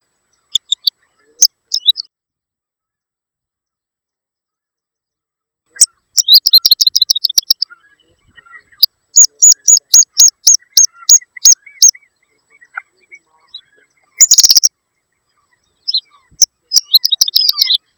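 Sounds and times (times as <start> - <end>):
tiqui tiqui común bird calling: 0.3 - 2.1, 5.7 - 17.9.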